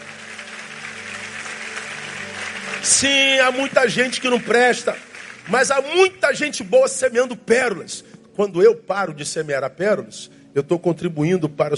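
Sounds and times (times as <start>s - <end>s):
audience applause: 0.0s - 6.1s
speech: 2.8s - 11.7s.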